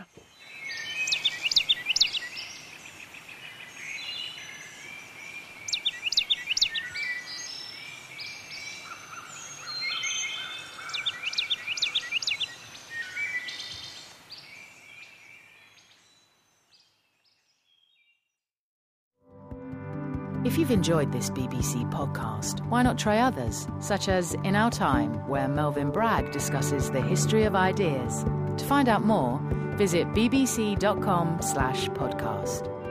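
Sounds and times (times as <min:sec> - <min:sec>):
woodland birds singing in a dense chorus: 0:00.0 - 0:18.2
speech: 0:20.6 - 0:32.8.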